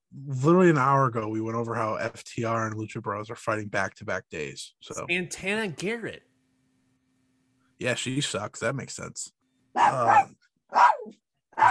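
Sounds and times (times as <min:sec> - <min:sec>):
speech: 0:00.2 - 0:06.3, 0:07.8 - 0:11.6
dog barking: 0:09.8 - 0:11.6.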